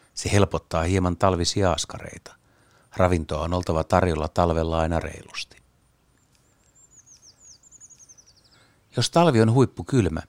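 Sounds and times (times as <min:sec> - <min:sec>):
speech: 0:00.2 - 0:05.6, 0:09.0 - 0:10.2
Eurasian treecreeper singing a high-pitched descending trill: 0:06.2 - 0:08.8.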